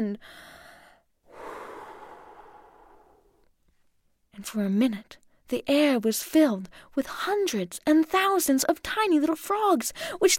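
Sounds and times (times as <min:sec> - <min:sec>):
speech: 0:00.0 - 0:00.5, 0:04.4 - 0:10.3
deep breath drawn before blowing on a seed head: 0:00.2 - 0:03.5
breath blowing on a fluffy dandelion-like seed head: 0:01.3 - 0:03.5.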